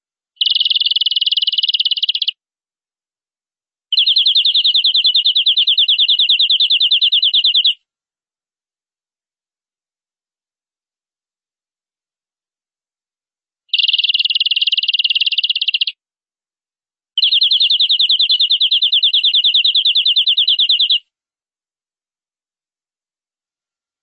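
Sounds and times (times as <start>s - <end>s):
canary song with rapid buzzy trills: 0.4s - 2.4s, 3.9s - 7.8s, 13.7s - 16.0s, 17.2s - 21.0s.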